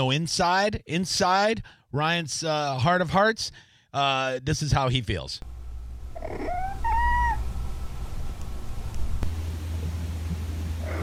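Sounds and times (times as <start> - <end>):
speech: 0.0 - 5.5
steady low rumble: 5.4 - 11.0
cat in heat yowling: 6.2 - 7.5, 10.8 - 11.0.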